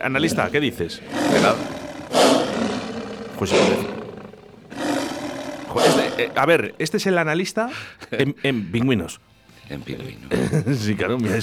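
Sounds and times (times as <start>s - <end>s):
speech: 0.0s - 2.4s, 3.4s - 4.0s, 5.8s - 11.4s
lion roaring in deep rasping bellows: 0.0s - 6.9s
laughter: 10.3s - 11.4s.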